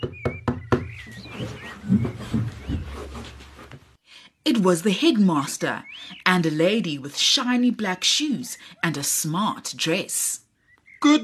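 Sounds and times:
sharp knocks on a door: 0.0 - 1.0
faint rustling: 0.9 - 4.0
speech: 4.6 - 10.4, 11.0 - 11.2.

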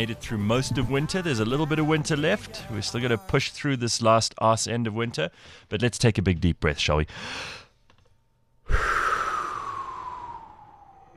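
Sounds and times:
speech: 0.0 - 7.6, 8.7 - 9.0
man yawning: 8.7 - 11.1.

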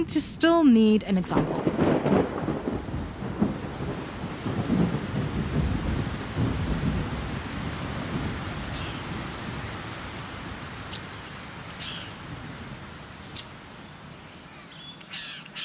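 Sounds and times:
speech: 0.0 - 2.3
steady rain hissing down in a thunderstorm: 0.0 - 14.6
deep rolling thunder: 1.3 - 10.8.

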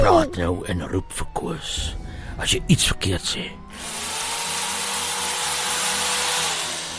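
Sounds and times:
speech: 0.2 - 4.0
power drill whirring: 3.7 - 6.9.

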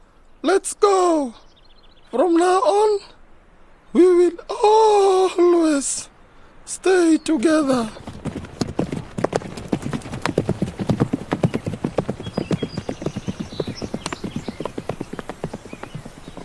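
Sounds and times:
speech: 0.4 - 1.5, 2.1 - 3.1, 3.9 - 6.1, 6.7 - 8.1
hooves trotting: 7.4 - 16.4.

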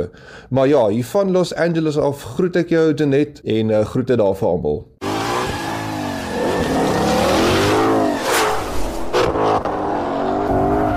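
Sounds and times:
speech: 0.0 - 4.9
Ford Mustang engine revving: 5.0 - 10.9.

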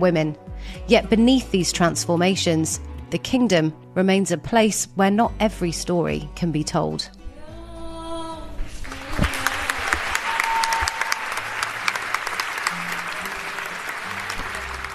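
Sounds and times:
speech: 0.0 - 7.2
large audience applauding and cheering at a film premiere: 8.8 - 14.9
whoops and shouts: 8.9 - 11.6.

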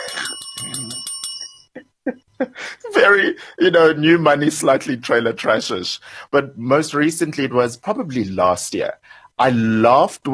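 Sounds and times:
warning bell ringing: 0.0 - 1.8
speech: 3.0 - 10.3.

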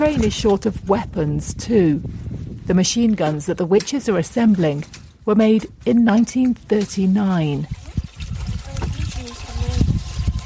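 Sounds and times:
speech: 0.0 - 7.8
bottled water pouring into a 1939 machine gun as coolant in Ukraine: 6.9 - 10.4.

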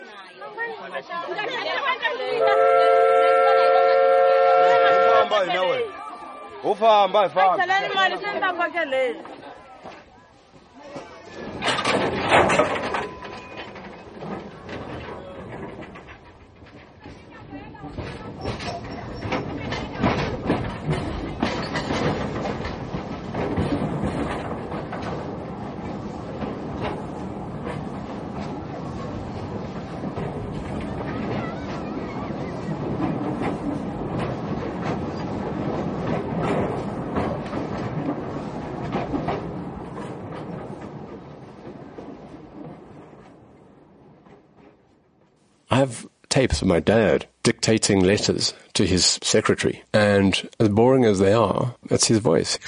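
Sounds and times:
speech: 0.8 - 3.0, 5.2 - 6.0, 6.6 - 9.4, 45.8 - 52.6
steam train rumbling and clattering along rails: 1.8 - 52.6
steam train whistle: 2.4 - 5.3.

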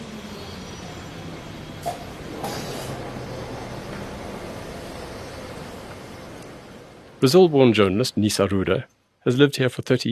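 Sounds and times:
hissing squeal: 0.0 - 6.8
old electric tram rumbling along its rails: 0.0 - 7.2
speech: 7.2 - 10.1.

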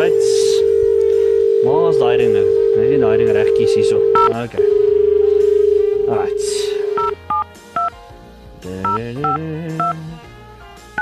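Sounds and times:
telephone keypad dialing tones: 0.7 - 6.3, 6.9 - 8.0, 8.8 - 10.0
speech: 2.0 - 5.0, 6.1 - 7.2, 8.6 - 10.0.

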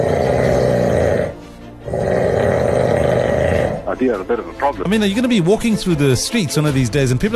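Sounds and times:
man snoring loudly: 0.0 - 3.9
speech: 4.0 - 7.3.

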